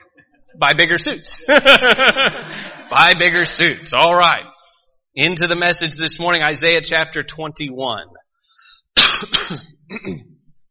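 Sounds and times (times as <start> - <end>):
speech: 0.5 - 4.5, 5.2 - 10.3
laughter: 1.4 - 3.6
man clearing throat: 9.0 - 10.4
man coughing: 9.0 - 10.4.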